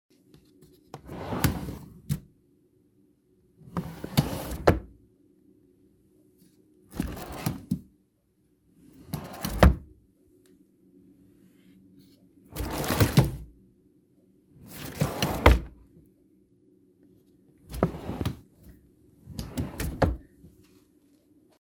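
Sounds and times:
large pull-out drawers in a walk-in closet sliding: 1.0 - 2.0, 3.7 - 4.9, 6.9 - 7.7, 8.9 - 9.9, 12.5 - 13.5, 14.7 - 15.8, 17.7 - 18.4, 19.3 - 20.2.

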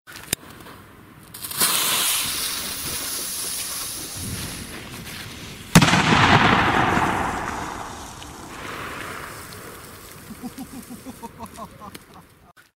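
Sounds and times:
firecrackers exploding: 1.3 - 11.2
person laughing: 10.2 - 12.7.

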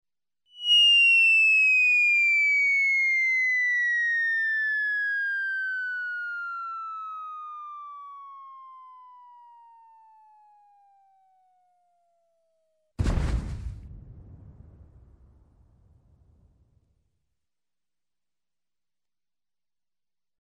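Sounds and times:
very long whistle of a falling object: 0.5 - 11.2
crash of destruction from a fall: 13.0 - 16.5.

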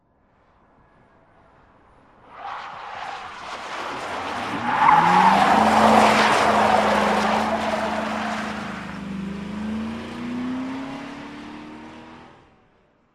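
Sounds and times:
car skidding on a wet surface or in snow: 2.1 - 11.7.

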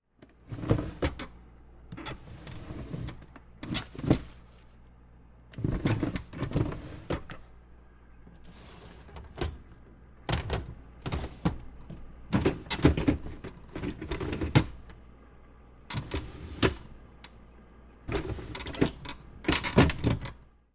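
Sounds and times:
refrigerator pull-out drawer sliding: 0.2 - 4.8, 5.5 - 7.6, 8.4 - 14.9, 15.9 - 17.0, 18.0 - 20.4.

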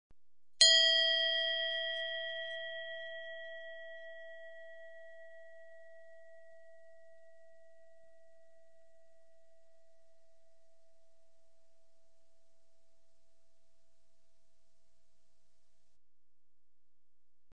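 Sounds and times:
small bell: 0.6 - 13.3.

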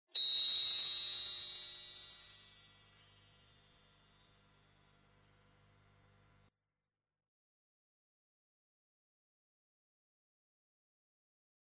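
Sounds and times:
magical sparkle: 0.1 - 6.5.

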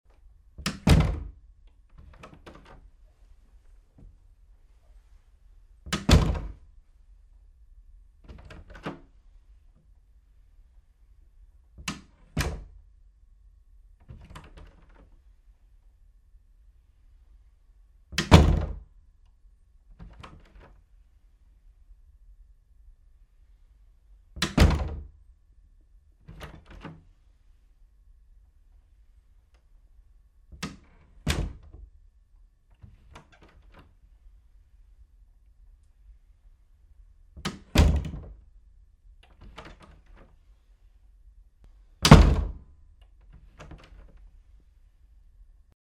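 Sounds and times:
bedroom door opening and closing: 0.6 - 3.0, 5.8 - 6.6, 8.2 - 9.2, 11.8 - 12.8, 14.0 - 15.3, 18.1 - 18.8, 20.0 - 20.8, 24.4 - 25.1, 26.3 - 27.1, 30.5 - 31.8, 32.8 - 34.0, 37.4 - 38.4, 39.2 - 40.4, 42.0 - 42.7.

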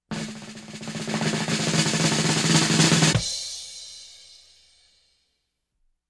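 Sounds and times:
circus drum roll: 0.0 - 3.5.

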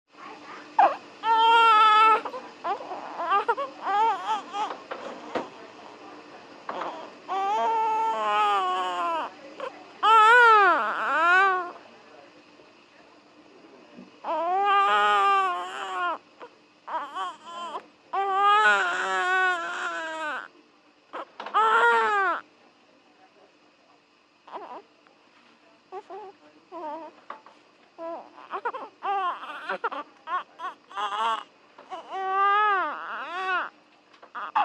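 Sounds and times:
newborn baby crying in a maternity ward delivery room: 0.8 - 4.8, 6.7 - 11.8, 14.2 - 20.5, 21.1 - 22.4, 24.5 - 24.8, 25.9 - 27.1, 28.0 - 33.7, 34.3 - 34.6.

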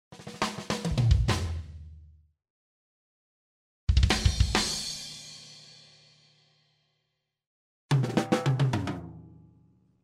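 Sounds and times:
three groups of drums: 0.1 - 2.0, 3.9 - 6.6, 7.9 - 9.5.

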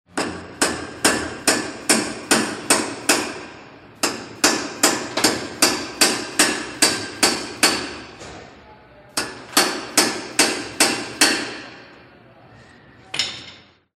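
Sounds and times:
hammer at house construction: 0.1 - 8.3, 9.2 - 11.9, 13.2 - 13.8.

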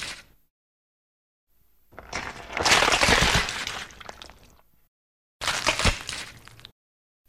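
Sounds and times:
bones crunching: 1.9 - 4.7, 5.4 - 6.7.

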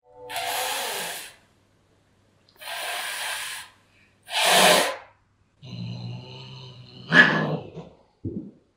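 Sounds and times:
cat hissing irritably at a male cat: 0.3 - 1.4, 2.6 - 5.1.

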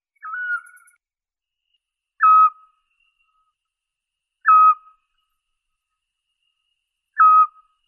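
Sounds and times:
scops owl calling: 2.2 - 2.6, 4.4 - 4.9, 7.2 - 7.6.

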